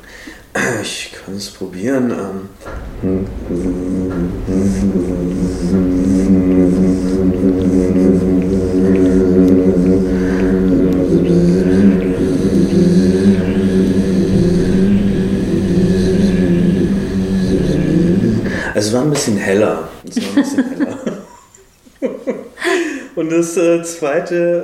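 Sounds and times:
speech: 0:00.8 - 0:03.7, 0:19.2 - 0:20.8, 0:23.3 - 0:24.6
person humming a droning buzz imitating insects swarming around a tree: 0:02.6 - 0:18.8
laughter: 0:20.0 - 0:23.0.

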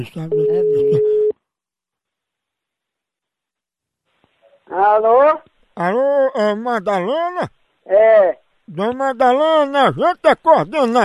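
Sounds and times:
speech: 0:00.0 - 0:01.1, 0:04.7 - 0:11.0
telephone tone while placing a call: 0:00.3 - 0:01.4.

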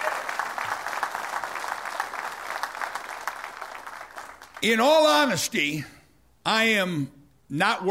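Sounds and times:
church audience clapping: 0:00.0 - 0:05.3
speech: 0:04.6 - 0:07.8.

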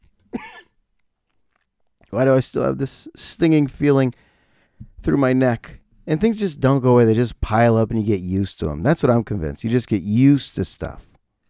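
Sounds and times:
person coughing: 0:00.4 - 0:00.8
speech: 0:02.1 - 0:04.3, 0:05.0 - 0:11.1.

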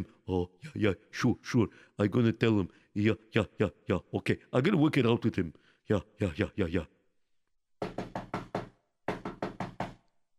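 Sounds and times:
speech: 0:00.0 - 0:07.0
knocking on a general's door: 0:07.8 - 0:10.0.

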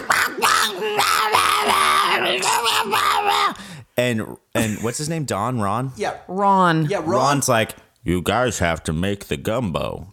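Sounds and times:
person imitating a man screaming: 0:00.0 - 0:03.6
speech: 0:04.0 - 0:10.1.

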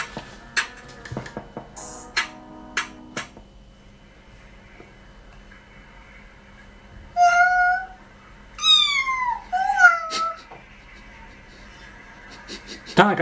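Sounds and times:
kitten meowing: 0:07.2 - 0:08.0, 0:08.6 - 0:10.4
laughter: 0:09.4 - 0:13.1
speech: 0:13.0 - 0:13.1.

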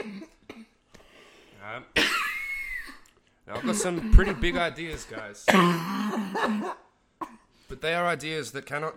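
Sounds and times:
person coughing: 0:00.0 - 0:00.8, 0:02.0 - 0:07.5
speech: 0:01.6 - 0:02.2, 0:03.5 - 0:06.8, 0:07.8 - 0:08.9.

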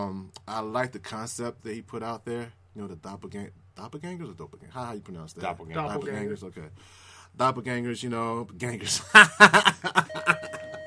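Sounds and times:
speech: 0:00.0 - 0:10.2
snickering laughter: 0:09.1 - 0:10.8
house doorbell steady electronic tone: 0:10.0 - 0:10.8.

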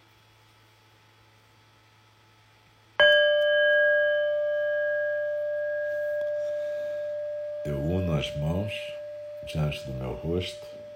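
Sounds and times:
meditation bell struck: 0:03.0 - 0:10.9
speech: 0:07.6 - 0:10.8.

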